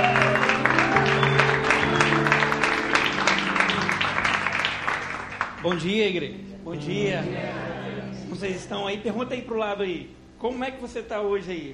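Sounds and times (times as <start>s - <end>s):
audience applause: 0.0s - 6.0s
soft sustained keyboard chords: 0.0s - 11.7s
speech: 5.6s - 11.7s.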